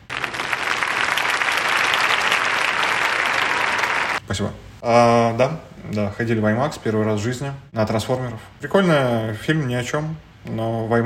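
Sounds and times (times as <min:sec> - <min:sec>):
sizable crowd applauding: 0:00.0 - 0:04.2
speech: 0:04.3 - 0:11.0.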